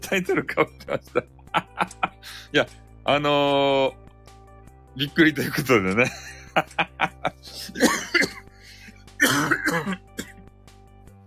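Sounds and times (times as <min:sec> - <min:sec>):
laughter: 0:00.1 - 0:02.5, 0:05.9 - 0:08.3
speech: 0:00.1 - 0:04.0, 0:05.0 - 0:08.3, 0:09.2 - 0:10.1
person coughing: 0:07.5 - 0:10.4
throat clearing: 0:07.5 - 0:10.4.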